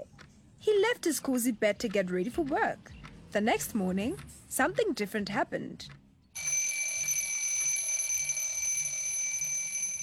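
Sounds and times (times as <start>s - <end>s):
speech: 0.6s - 6.0s
alarm clock ringing with a metallic jangle: 6.4s - 10.0s.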